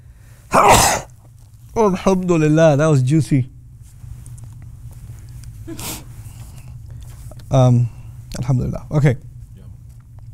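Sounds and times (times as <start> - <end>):
loud sneeze: 0.5 - 1.2
speech: 1.8 - 3.5, 7.5 - 9.3.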